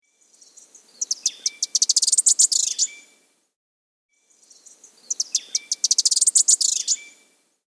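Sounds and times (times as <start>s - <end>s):
Ash-Throated Bush-Tanager in South America: 0.9s - 3.1s, 4.6s - 7.2s.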